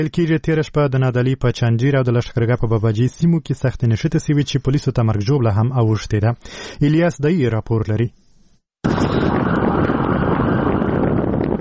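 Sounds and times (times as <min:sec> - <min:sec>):
speech: 0:00.0 - 0:08.2, 0:08.8 - 0:09.8
hot dusty wind buffeting the microphone near Lashkar Gah: 0:08.8 - 0:11.6.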